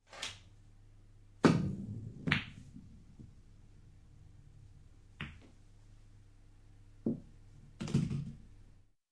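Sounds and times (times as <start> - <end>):
billiard balls striking on a long shot: 1.4 - 5.6, 7.0 - 8.5.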